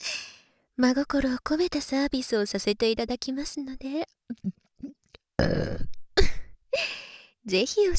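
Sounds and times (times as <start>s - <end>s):
speech: 0.8s - 4.6s, 5.4s - 5.9s, 6.8s - 7.9s
soft mouth noises: 4.3s - 6.0s
women burping: 4.3s - 6.5s.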